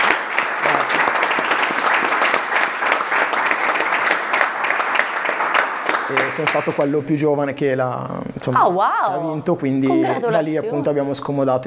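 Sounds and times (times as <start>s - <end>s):
laughter: 0.0s - 2.5s, 6.1s - 7.1s, 7.9s - 11.5s
group of people applauding: 0.0s - 7.1s, 9.9s - 10.8s
speech: 6.2s - 11.6s.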